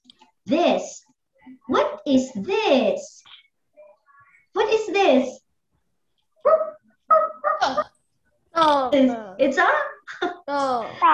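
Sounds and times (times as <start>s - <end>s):
speech: 0.5s - 1.1s, 1.7s - 3.3s, 4.6s - 5.4s, 6.4s - 7.9s, 8.6s - 11.1s
dog barking and yelping: 6.4s - 7.9s.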